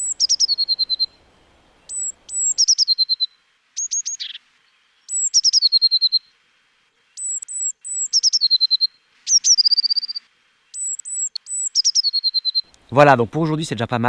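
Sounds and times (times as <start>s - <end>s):
blue tit singing a high trilling whinny: 0.0s - 4.4s, 5.1s - 6.2s, 7.2s - 10.2s, 10.8s - 12.8s
speech: 12.9s - 14.0s.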